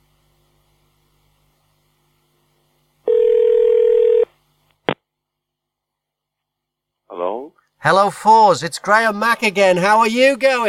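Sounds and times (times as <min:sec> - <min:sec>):
electronic ringback tone on a phone line: 0:03.1 - 0:04.3
speech: 0:07.8 - 0:10.6.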